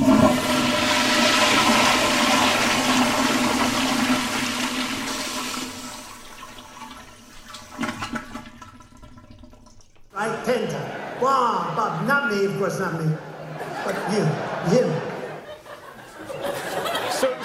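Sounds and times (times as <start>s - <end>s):
toilet flushing and refilling: 0.0s - 10.2s
laughter: 10.2s - 17.4s
speech: 12.0s - 13.3s, 13.9s - 15.0s.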